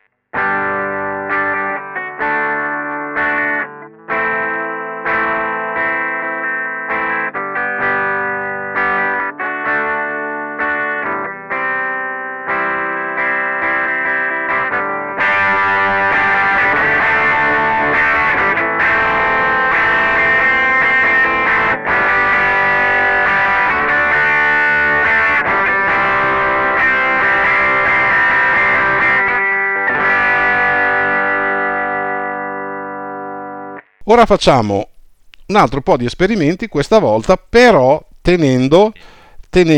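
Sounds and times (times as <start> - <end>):
electric guitar playing clean then distorted chords: 0.0 - 34.2, 38.7 - 39.7
speech: 34.1 - 34.9, 35.5 - 39.7.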